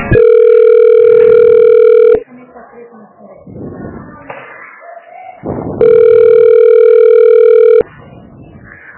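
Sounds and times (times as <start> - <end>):
telephone busy tone beeps during call transfer: 0.1 - 2.3, 5.8 - 7.9.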